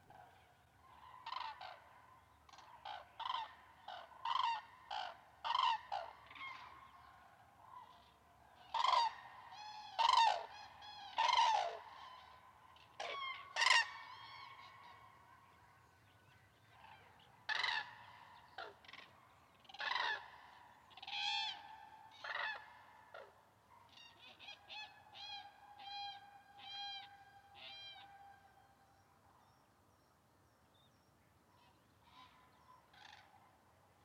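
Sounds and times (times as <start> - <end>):
common cranes Grus grus calling from a lake: 0.1 - 1.9, 2.5 - 7.0, 7.7 - 15.2, 16.7 - 28.4.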